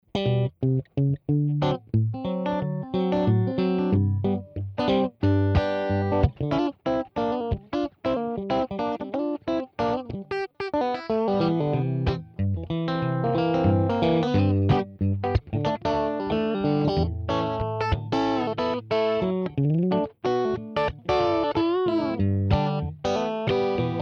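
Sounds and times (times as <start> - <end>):
fat guitar: 0.0 - 24.0.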